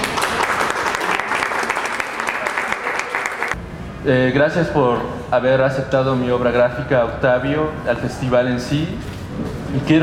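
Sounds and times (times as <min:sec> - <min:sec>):
audience applause at an inauguration at a cultural center: 0:00.0 - 0:03.6
speech: 0:04.0 - 0:10.0.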